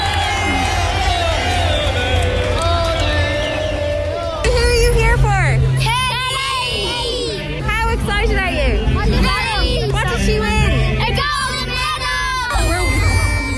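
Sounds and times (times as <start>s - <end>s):
dense excited crowd chatter welcoming a bus: 0.0s - 13.5s
children's voices in a crowd: 5.8s - 7.6s, 9.0s - 13.5s.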